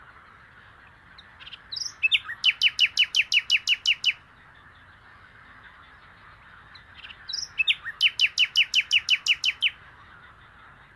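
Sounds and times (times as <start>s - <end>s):
common nightingale Luscinia megarhynchos song: 0.8s - 4.3s, 6.7s - 9.9s.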